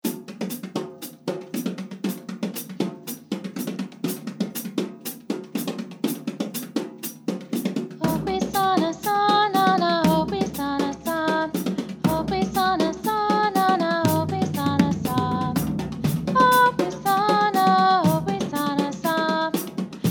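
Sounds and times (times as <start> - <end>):
drums: 0.0 - 20.1
vocals: 7.6 - 20.1.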